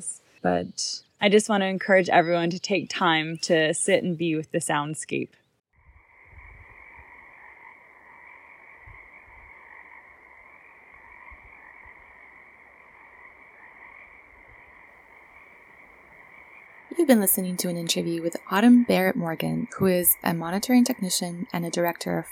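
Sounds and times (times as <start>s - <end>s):
speech: 0.0s - 5.4s, 17.1s - 22.2s
frogs croaking in a dense spring chorus on Cortez Island: 5.8s - 22.2s.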